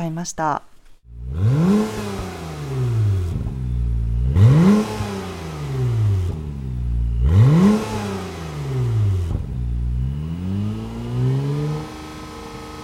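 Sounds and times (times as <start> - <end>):
speech: 0.0 - 0.7
Honda NSX sports car engine revving: 1.1 - 12.8.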